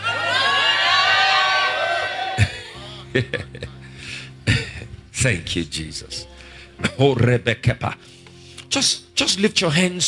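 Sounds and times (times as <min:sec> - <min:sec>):
crowd shouting and cheering: 0:00.0 - 0:02.8
speech: 0:03.1 - 0:03.8, 0:05.2 - 0:06.3, 0:06.9 - 0:10.0.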